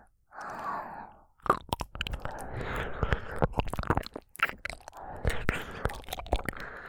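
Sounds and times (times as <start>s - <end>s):
breathy whispers: 0.0s - 1.4s, 2.0s - 6.8s
wet ASMR mouth sounds licking and nibbling an ear: 1.4s - 6.8s.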